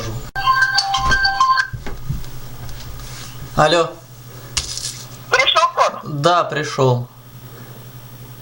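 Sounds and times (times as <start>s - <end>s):
phone ringtone for an incoming call: 0.4s - 1.8s
speech: 3.6s - 4.0s, 6.1s - 7.2s.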